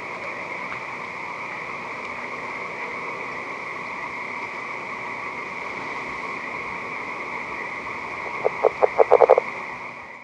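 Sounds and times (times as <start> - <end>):
background drone: 0.0 - 10.2
California red-legged frog giving low knocking pulses: 8.2 - 9.5.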